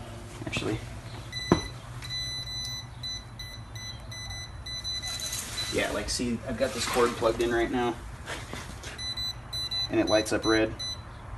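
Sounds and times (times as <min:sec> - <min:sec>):
speech: 0:00.5 - 0:01.0, 0:05.8 - 0:08.5, 0:09.9 - 0:10.8
voltage tester beeping near a live wire: 0:01.3 - 0:05.9, 0:09.0 - 0:11.1.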